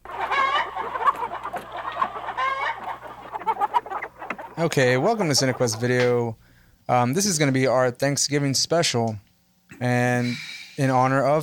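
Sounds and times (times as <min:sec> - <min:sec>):
chicken clucking and squawking: 0:00.0 - 0:06.3
speech: 0:04.6 - 0:11.4.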